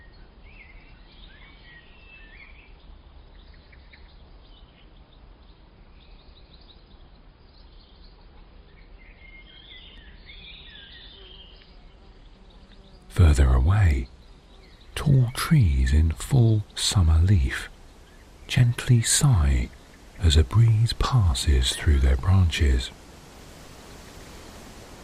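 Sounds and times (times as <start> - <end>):
birds piping and chirping: 0.0 - 25.0
bees humming among flowers: 11.1 - 25.0
speech: 13.2 - 14.2, 15.0 - 17.7, 18.5 - 23.0.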